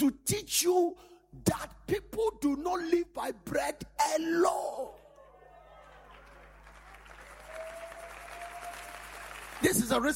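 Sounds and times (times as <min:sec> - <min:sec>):
speech: 0:00.0 - 0:05.0, 0:09.6 - 0:10.1
congregation clapping in a large room: 0:05.8 - 0:10.1.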